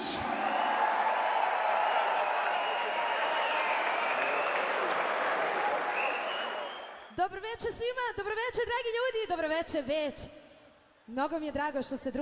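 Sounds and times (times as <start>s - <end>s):
audience applause from a large crowd at a tavern-style music evening: 0.0s - 7.1s
speech: 7.6s - 10.4s, 11.1s - 12.2s.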